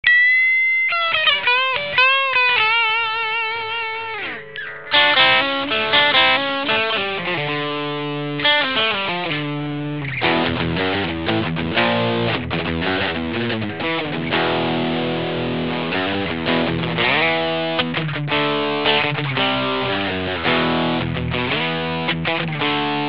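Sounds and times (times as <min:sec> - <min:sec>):
guitar through Bluesbreaker overdrive: 0:00.0 - 0:23.0.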